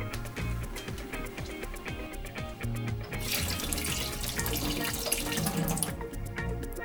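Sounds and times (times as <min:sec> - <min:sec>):
tap water running into a kettle: 0:00.0 - 0:06.8.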